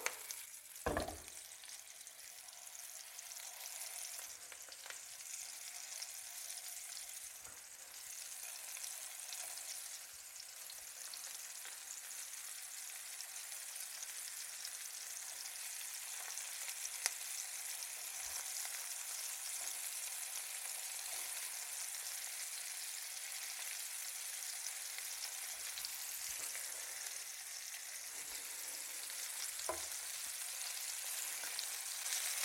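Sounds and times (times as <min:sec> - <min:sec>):
meatballs frying in oil in a pan: 0:00.0 - 0:32.4
knock: 0:00.9 - 0:01.3.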